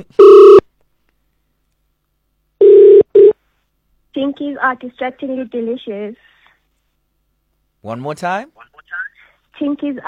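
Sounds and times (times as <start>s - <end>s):
speech: 0.0s - 0.5s, 4.3s - 6.3s, 7.8s - 9.0s, 9.6s - 10.0s
telephone ring tones after a number is dialed on a call: 0.2s - 0.6s, 2.6s - 3.4s.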